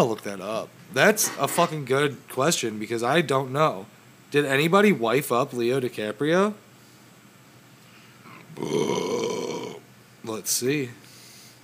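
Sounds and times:
speech: 0:00.0 - 0:06.6, 0:08.6 - 0:09.1, 0:10.3 - 0:11.1
long loud burp into microphone: 0:08.3 - 0:09.8.

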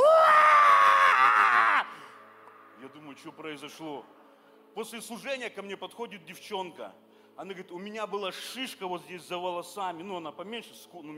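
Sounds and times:
single voice imitating a high-pitched scream: 0:00.0 - 0:01.9
speech: 0:03.2 - 0:04.2, 0:04.8 - 0:11.1.

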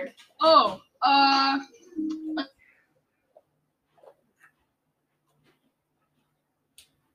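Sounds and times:
voice breaking up into choppy fragments as a microphone cuts out: 0:00.0 - 0:02.5
speech: 0:00.2 - 0:01.8.

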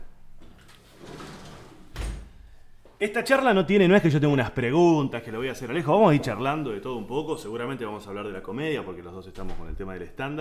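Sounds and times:
sliding window rumbling along its track: 0:00.5 - 0:02.1
speech: 0:03.0 - 0:10.3.

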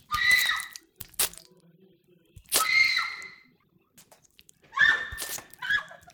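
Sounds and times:
bones being chewed and crushed: 0:00.0 - 0:03.1, 0:04.0 - 0:06.1
shrill squealing cries: 0:00.1 - 0:00.8, 0:02.6 - 0:03.4, 0:04.7 - 0:06.0.

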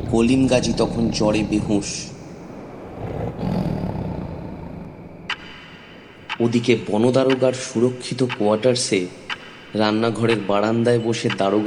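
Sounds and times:
tiger roaring across a river at dusk: 0:00.0 - 0:05.0
speech: 0:00.1 - 0:02.1, 0:06.4 - 0:11.6.

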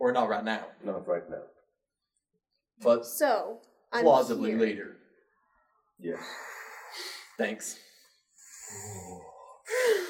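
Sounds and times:
speech: 0:00.0 - 0:01.5, 0:02.8 - 0:05.0, 0:06.0 - 0:07.8, 0:08.7 - 0:10.0
deep breath: 0:05.5 - 0:07.4, 0:08.0 - 0:10.0.

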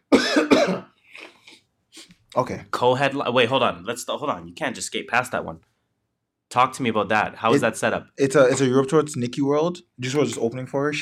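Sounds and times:
loud coughs: 0:00.0 - 0:01.6
soft breathy throat clearing: 0:00.1 - 0:01.6
speech: 0:02.4 - 0:05.7, 0:06.5 - 0:10.9.

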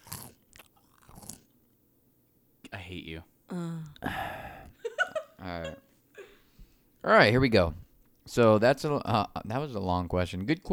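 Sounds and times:
crunching on chips: 0:00.0 - 0:01.5
speech: 0:02.9 - 0:04.4, 0:05.4 - 0:05.9, 0:07.0 - 0:10.7
laughter: 0:04.8 - 0:05.8.

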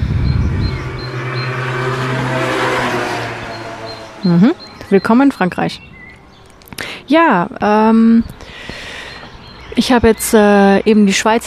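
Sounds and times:
motor scooter driving past: 0:00.0 - 0:06.4
speech: 0:04.2 - 0:06.0, 0:07.0 - 0:08.8, 0:09.8 - 0:11.4.

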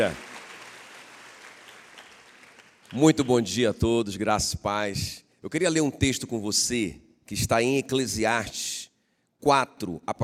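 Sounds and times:
speech: 0:00.0 - 0:00.2, 0:02.9 - 0:10.2
crowd clapping: 0:00.0 - 0:03.6.

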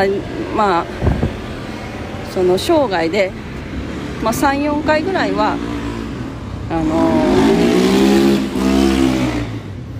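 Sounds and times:
speech: 0:00.0 - 0:01.2, 0:02.3 - 0:03.4, 0:04.2 - 0:05.8, 0:06.7 - 0:07.6
motorcycle engine revving: 0:05.2 - 0:09.9.

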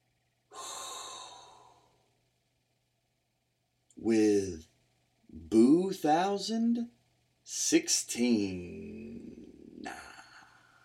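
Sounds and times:
deep breath inhaled: 0:00.5 - 0:01.9
speech: 0:04.0 - 0:04.7, 0:05.5 - 0:09.0.

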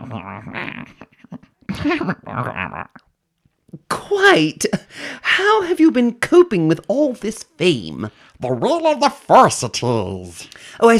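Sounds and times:
person imitating animal-like coos and whimpers: 0:00.0 - 0:03.1
speech: 0:00.1 - 0:01.1, 0:01.8 - 0:02.9, 0:04.2 - 0:10.9.

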